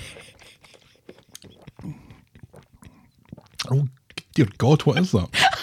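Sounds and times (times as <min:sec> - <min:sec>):
soft wet mouth clicks and swallowing: 0:00.3 - 0:04.7
person slurping a fizzy soda: 0:00.3 - 0:04.8
speech: 0:03.7 - 0:05.4.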